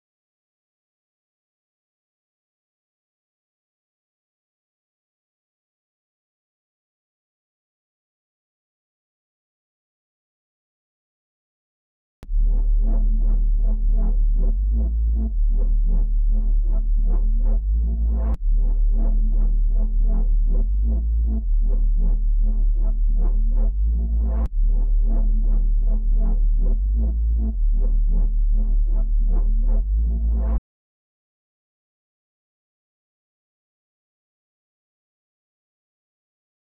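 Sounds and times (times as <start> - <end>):
A minor bass melody loop at 157 BPM: 12.2 - 30.6.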